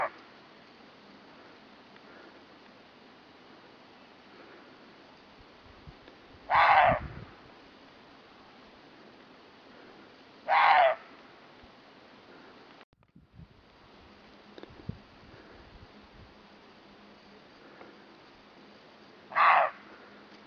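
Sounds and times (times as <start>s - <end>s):
steady low hiss: 0.0s - 20.4s
roe deer barking: 6.5s - 7.0s, 10.5s - 11.0s, 19.3s - 19.8s.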